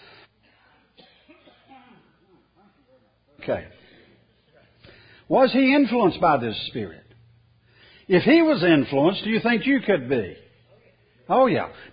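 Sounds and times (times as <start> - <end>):
person coughing: 1.0 - 2.2
speech: 3.4 - 3.8, 5.3 - 7.0, 8.1 - 10.4, 11.3 - 11.9.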